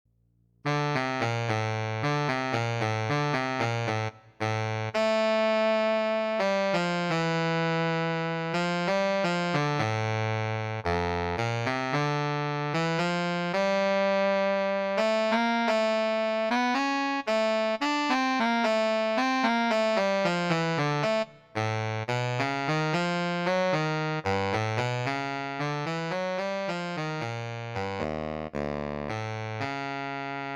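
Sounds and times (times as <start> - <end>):
baritone saxophone playing lyrically: 0.7 - 30.5.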